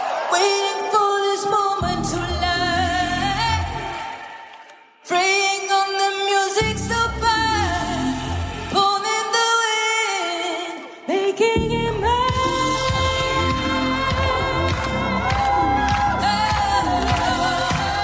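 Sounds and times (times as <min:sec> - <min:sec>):
crowd cheering: 0:00.0 - 0:01.8, 0:03.8 - 0:06.7, 0:12.9 - 0:18.0
live cover of a disco song performed at a film festival: 0:00.0 - 0:18.0.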